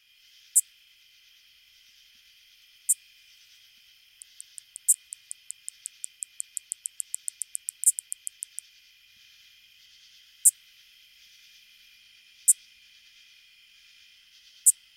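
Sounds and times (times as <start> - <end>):
faint hum: 0.0 - 14.9
greater angle-wing katydid ticks and clicks: 4.2 - 8.7.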